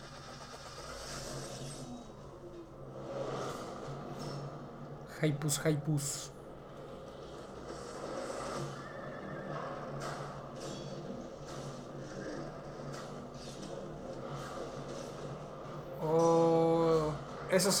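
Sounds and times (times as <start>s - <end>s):
samurai video game sound: 0.0s - 17.7s
speech: 5.2s - 6.4s, 17.6s - 17.7s
horse neighing in a samurai video game: 8.7s - 9.9s.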